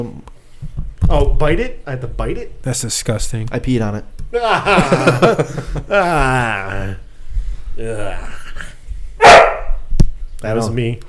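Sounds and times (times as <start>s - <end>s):
speech: 0.0s - 0.3s, 1.1s - 7.0s, 7.8s - 8.4s, 10.4s - 11.0s
laughter: 4.3s - 7.0s
dog barking: 9.2s - 9.8s.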